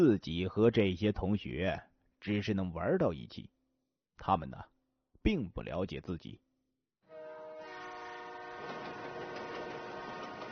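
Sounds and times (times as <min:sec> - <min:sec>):
speech: 0:00.0 - 0:03.6, 0:04.2 - 0:06.4
high-speed train horn blast: 0:07.1 - 0:10.4
high-speed train rushing by with roar of wind and rails: 0:07.6 - 0:10.4.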